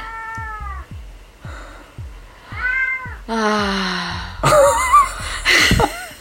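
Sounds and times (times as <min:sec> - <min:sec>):
male cat meowing: 0:00.0 - 0:01.0, 0:02.5 - 0:03.3
low thumping: 0:00.0 - 0:06.1.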